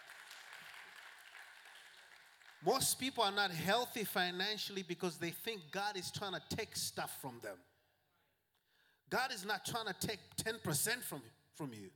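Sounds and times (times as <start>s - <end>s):
large congregation clapping in applause: 0.0s - 3.4s
speech: 2.6s - 7.7s, 9.1s - 11.9s.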